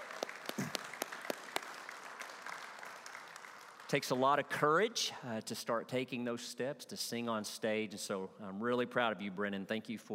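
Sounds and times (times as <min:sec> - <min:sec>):
congregation applauding: 0:00.0 - 0:04.4
speech: 0:03.9 - 0:10.1.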